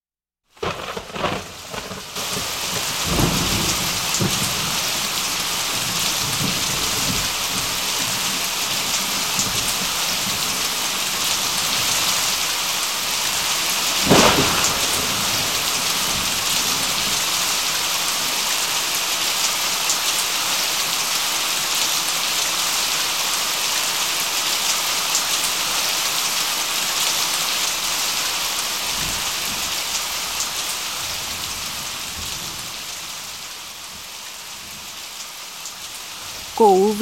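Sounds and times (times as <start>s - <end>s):
heavy rain pouring down from dark storm clouds: 0.5s - 36.9s.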